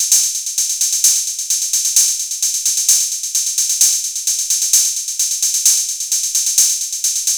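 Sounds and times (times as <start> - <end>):
techno drum kit hi-hat: 0.0 - 7.3.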